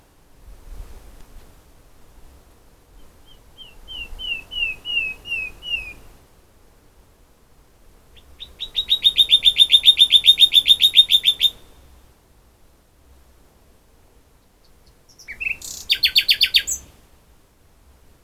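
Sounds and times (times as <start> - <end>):
Common nightingale song, Luscinia megarhynchos: 2.9 - 6.2, 8.0 - 12.0, 14.1 - 17.1.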